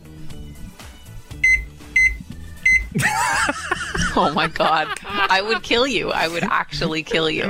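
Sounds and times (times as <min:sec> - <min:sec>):
microwave beeping while setting its clock: 0:01.3 - 0:03.0
laughter: 0:02.9 - 0:07.4
speech: 0:04.2 - 0:07.4.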